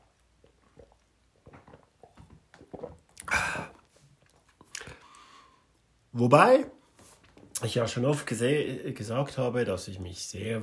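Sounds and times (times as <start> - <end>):
person taking a quick sip of beer: 0.0 - 5.3
speech: 6.2 - 6.8, 7.6 - 10.6.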